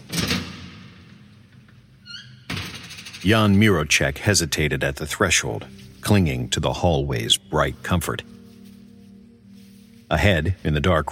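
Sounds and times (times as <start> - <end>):
heavy morgue door hinges creaking: 1.5 - 3.6
speech: 3.2 - 8.4, 10.1 - 11.1.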